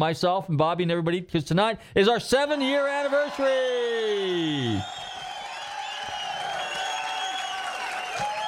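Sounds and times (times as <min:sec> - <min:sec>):
speech: 0:00.0 - 0:05.0
large crowd cheering: 0:02.4 - 0:08.4
whoops: 0:02.7 - 0:08.4
shrill whistles: 0:03.2 - 0:08.4.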